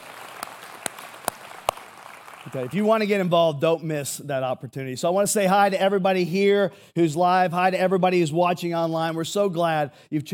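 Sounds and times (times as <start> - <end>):
church audience hand claps: 0.0 - 2.8
speech: 2.4 - 10.3.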